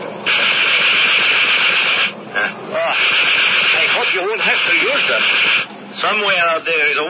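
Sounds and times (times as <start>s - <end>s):
machine guns firing on an old Morane fighter plane: 0.2s - 2.2s, 3.0s - 5.7s
speech: 4.6s - 7.0s.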